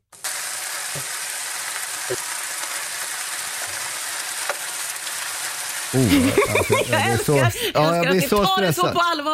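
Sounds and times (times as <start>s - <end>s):
bacon sizzling and crackling in a hot pan: 0.1s - 7.6s
speech: 2.1s - 2.3s, 5.9s - 9.3s
laughter: 6.0s - 9.2s.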